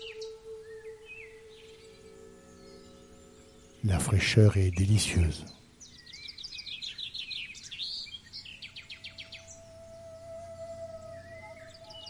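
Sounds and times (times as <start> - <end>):
sustained whistling tone: 0.0 - 3.8, 9.1 - 12.0
birds singing in a lively chorus: 0.0 - 12.0
speech: 3.8 - 5.6.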